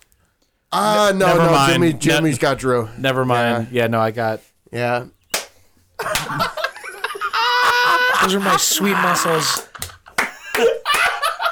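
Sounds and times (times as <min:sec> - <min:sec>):
speech: 0:00.7 - 0:05.2, 0:08.2 - 0:09.7
hands slapping bare stomachs: 0:05.3 - 0:06.5, 0:09.5 - 0:11.2
people laughing: 0:06.0 - 0:11.4.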